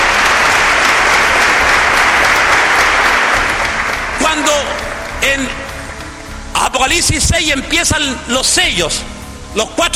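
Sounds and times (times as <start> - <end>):
audience applauding at a sermon: 0.0 - 6.5
speech: 6.8 - 9.9.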